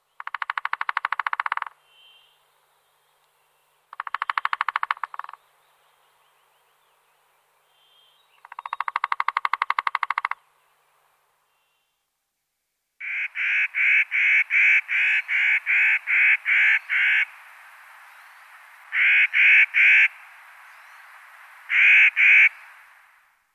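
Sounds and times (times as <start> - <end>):
three-toed woodpecker calling: 0.0 - 2.4, 3.9 - 5.4, 7.8 - 10.5, 13.0 - 23.1.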